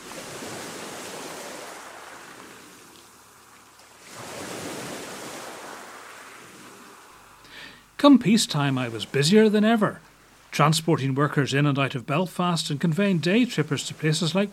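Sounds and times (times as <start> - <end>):
sea waves washing ashore: 0.0 - 14.5
speech: 8.0 - 14.5.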